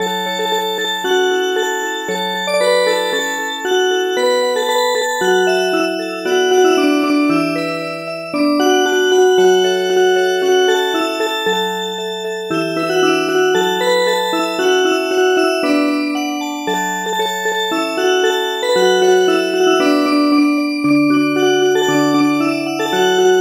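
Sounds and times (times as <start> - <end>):
music box playing an Oroqen folk song: 0.0 - 23.4.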